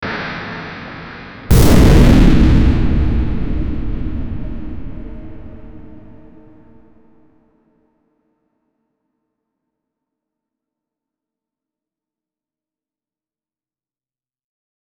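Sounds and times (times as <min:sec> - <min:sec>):
rising bass-boosted rumble: 0:01.5 - 0:06.3.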